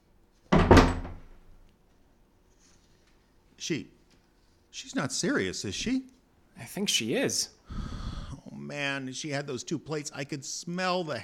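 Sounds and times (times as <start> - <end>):
back porch door of a house swinging shut with a solid thud: 0.5 - 1.4
speech: 3.6 - 4.0, 4.7 - 7.8, 8.7 - 11.2.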